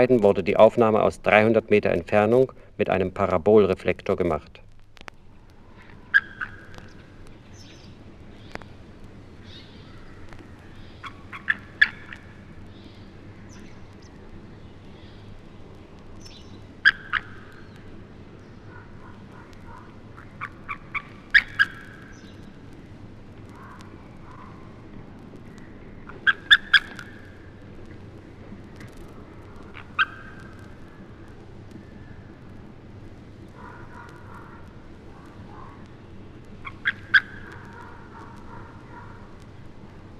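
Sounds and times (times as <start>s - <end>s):
speech: 0.0s - 4.6s
low steady rumble: 0.0s - 40.1s
eagle giving defensive calls near its nest while attacked by a buzzard: 5.7s - 8.7s, 9.4s - 13.7s, 16.3s - 17.8s, 18.6s - 22.5s, 25.5s - 27.6s, 29.6s - 32.3s, 33.5s - 35.9s, 36.6s - 39.3s.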